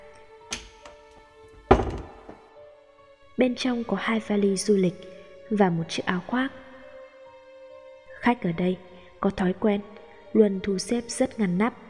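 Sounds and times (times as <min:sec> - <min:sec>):
wall cabinet door opening: 0:00.5 - 0:02.5
dull wooden knocks: 0:01.6 - 0:02.5
speech: 0:03.4 - 0:06.6, 0:08.2 - 0:11.8.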